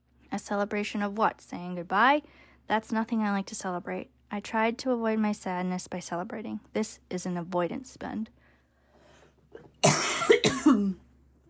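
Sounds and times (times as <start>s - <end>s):
speech: 0.4s - 8.4s
harsh raspy coughs: 9.6s - 11.0s.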